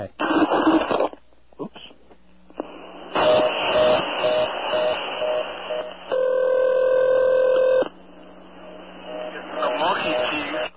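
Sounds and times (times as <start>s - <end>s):
crackly telephone line noise: 0.2s - 10.7s
buzzy ring tone on a rural telephone line: 6.1s - 7.8s.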